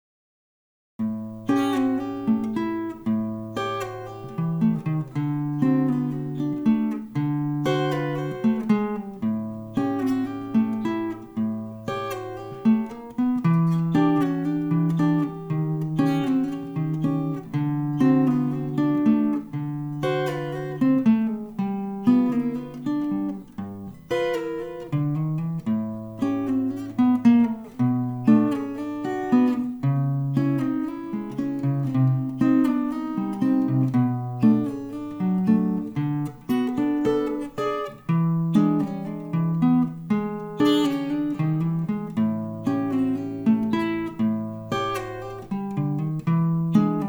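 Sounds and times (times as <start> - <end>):
acoustic tritone blues: 1.0 - 47.0.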